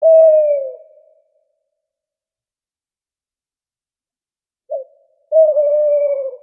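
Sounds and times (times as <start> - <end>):
owl hooting: 0.0 - 1.2, 4.7 - 6.4.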